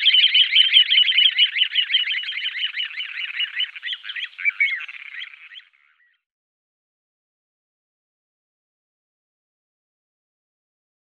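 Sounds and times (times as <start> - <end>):
little ringed plover trilling call: 0.0 - 6.2.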